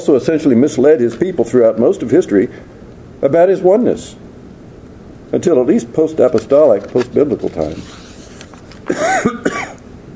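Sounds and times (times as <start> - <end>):
speech: 0.0 - 4.2, 5.3 - 8.0, 8.9 - 9.4
raspy cough: 8.9 - 9.8.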